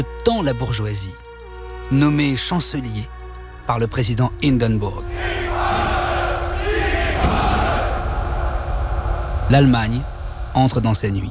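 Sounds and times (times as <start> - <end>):
speech: 0.0 - 1.3, 1.9 - 5.4, 9.5 - 11.2
vast crowd roaring, shouting and cheering: 5.1 - 9.7.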